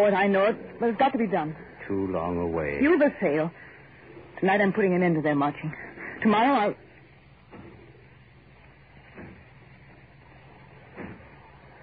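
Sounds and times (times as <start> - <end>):
speech: 0.0 - 3.7, 4.4 - 6.8
steady low rumble: 0.0 - 11.8
distant heavy thuds of pounding on a door: 9.0 - 10.0, 10.8 - 11.7.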